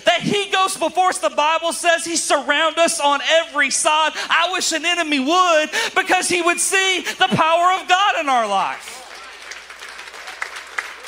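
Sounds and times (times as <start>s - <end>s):
speech: 0.2s - 9.0s
light polite golf clap applause from an audience: 8.8s - 11.0s.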